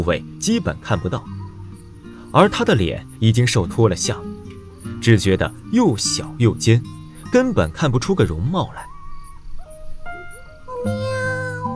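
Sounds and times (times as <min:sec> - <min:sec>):
speech: 0:00.0 - 0:01.4, 0:02.3 - 0:04.4, 0:05.0 - 0:08.9
orange cat meowing: 0:08.6 - 0:11.7.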